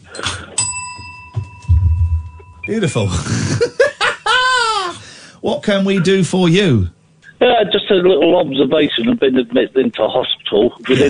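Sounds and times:
small bell struck: 0:00.2 - 0:02.7
speech: 0:02.7 - 0:03.9, 0:05.4 - 0:11.0
laughter: 0:03.1 - 0:05.0, 0:10.9 - 0:11.0.

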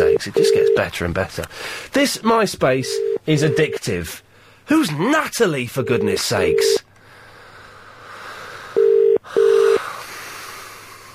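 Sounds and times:
telephone ringing tone heard down the line: 0:00.0 - 0:00.9, 0:02.8 - 0:03.8, 0:05.8 - 0:06.8, 0:08.8 - 0:09.8
faint hiss: 0:00.0 - 0:11.1
speech: 0:00.2 - 0:06.9.

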